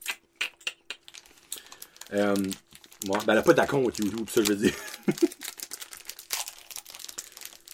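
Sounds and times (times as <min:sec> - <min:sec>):
paper being crumpled and crinkled: 0:01.0 - 0:07.7
speech: 0:02.1 - 0:05.4.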